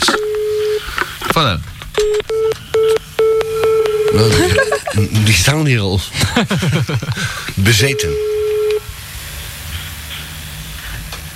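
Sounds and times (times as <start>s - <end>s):
telephone tones as a number is dialled to call the fire brigade: 0.0s - 0.9s, 2.0s - 4.4s, 7.9s - 8.8s
speech: 1.4s - 1.7s, 5.0s - 8.4s
laughter: 4.1s - 5.4s, 6.1s - 7.6s.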